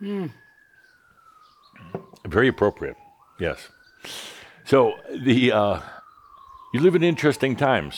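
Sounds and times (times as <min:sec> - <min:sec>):
speech: 0:00.0 - 0:00.5, 0:02.3 - 0:06.0, 0:06.7 - 0:07.9
high-pitched emergency vehicle siren wailing: 0:00.0 - 0:07.9.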